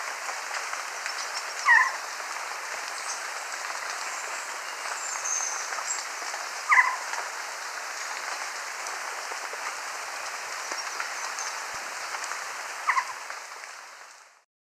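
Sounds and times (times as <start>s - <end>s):
constant hissing background: 0.0s - 14.4s
crested quetzal calls in Ecuador: 1.0s - 2.2s, 2.9s - 7.2s, 12.8s - 13.2s.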